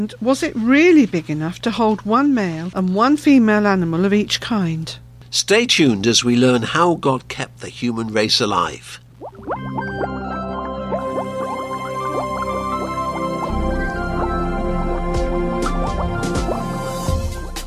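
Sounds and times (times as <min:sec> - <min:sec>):
speech: 0:00.0 - 0:10.1
bubbling liquid: 0:09.1 - 0:17.1.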